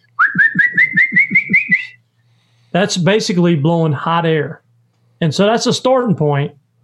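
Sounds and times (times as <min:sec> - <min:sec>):
whistle blown with a warbling high tone: 0:00.1 - 0:02.0
speech: 0:02.8 - 0:04.6, 0:05.2 - 0:06.6.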